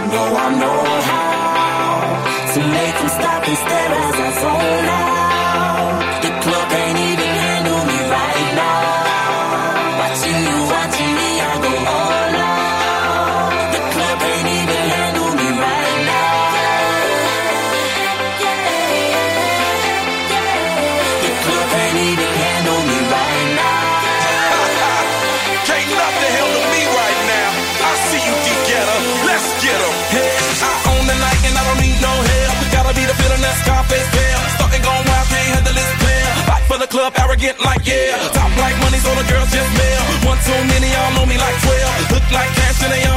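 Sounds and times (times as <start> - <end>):
upbeat pop-rap track with thumping bass line and bright synths: 0.0 - 43.1
speech: 0.1 - 1.4, 2.6 - 5.0.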